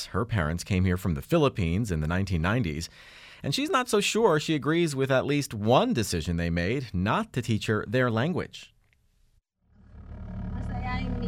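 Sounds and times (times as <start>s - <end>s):
speech: 0.0s - 8.7s
low engine rumble inside a moving car: 9.6s - 11.2s
road noise: 9.6s - 11.2s.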